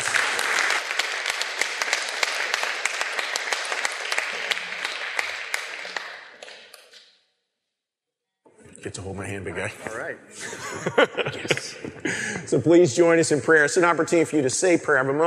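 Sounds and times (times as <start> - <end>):
audience applause: 0.0 - 7.0
speech: 8.8 - 15.2
laughter: 9.5 - 13.0.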